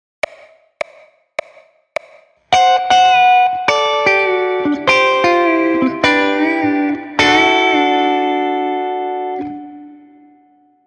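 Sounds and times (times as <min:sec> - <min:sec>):
pedal steel guitar: 0:02.5 - 0:10.8.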